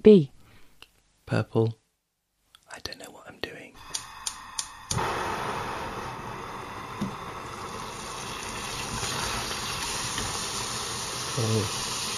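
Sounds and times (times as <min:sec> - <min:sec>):
speech: 0:00.0 - 0:00.3, 0:01.3 - 0:01.8, 0:11.4 - 0:11.8
sharp clicks: 0:03.8 - 0:05.0
butter melting and sizzling in a hot pan: 0:03.8 - 0:12.1.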